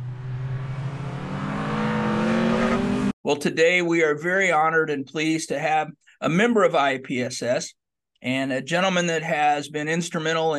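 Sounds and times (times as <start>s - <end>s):
race car engine revving: 0.0s - 3.2s
speech: 3.3s - 10.5s.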